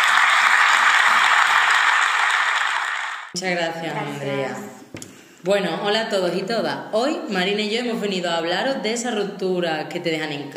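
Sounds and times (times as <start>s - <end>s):
crowd applauding: 0.0s - 3.4s
speech: 3.4s - 10.5s.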